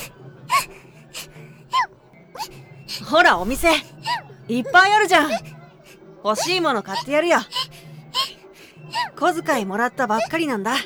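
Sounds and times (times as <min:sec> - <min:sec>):
child crying in sobbing wails: 0:00.0 - 0:04.2, 0:06.4 - 0:09.2
child's gasping breaths: 0:00.0 - 0:04.3, 0:05.0 - 0:09.3
speech: 0:03.0 - 0:05.6, 0:06.2 - 0:07.6, 0:08.9 - 0:10.8.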